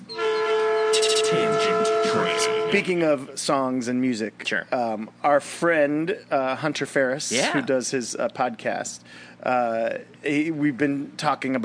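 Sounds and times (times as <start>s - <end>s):
train horn: 0.0s - 3.3s
speech: 2.7s - 11.6s.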